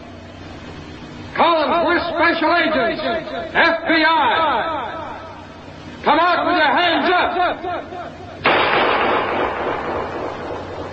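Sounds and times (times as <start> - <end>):
speech: 2.1 - 5.0, 6.0 - 8.7
gunshot fired in the dark: 8.4 - 10.9.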